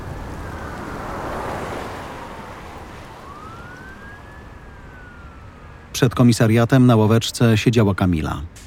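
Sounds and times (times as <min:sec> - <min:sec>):
cold wind blowing: 0:00.0 - 0:06.2
speech: 0:06.0 - 0:08.6.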